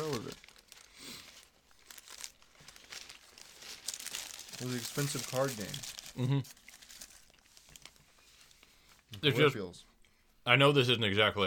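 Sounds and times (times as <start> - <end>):
burrito wrapper crinkling as burrito is ripped in half: 0.0 - 8.6
speech: 4.6 - 6.6, 9.2 - 11.4.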